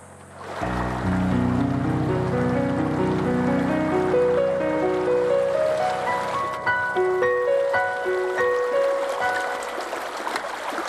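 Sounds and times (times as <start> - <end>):
flowing water rushing: 0.0 - 10.8
bright melodic tune in stepped and plinking notes: 0.7 - 9.8.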